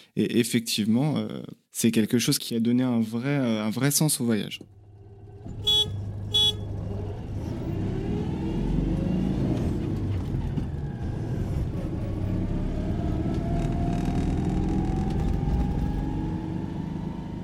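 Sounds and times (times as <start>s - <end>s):
speech: 0.2s - 4.8s
small engine of a Renault 4L car droning while driving: 4.7s - 17.4s
car horn toots: 5.5s - 6.8s.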